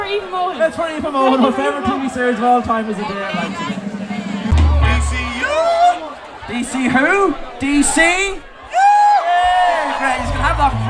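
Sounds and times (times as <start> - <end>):
speech: 0.1 - 3.8, 6.5 - 8.8, 10.0 - 10.8
live gig crowd cheering and roaring: 1.3 - 10.8
loud sustained whoop: 8.7 - 9.9.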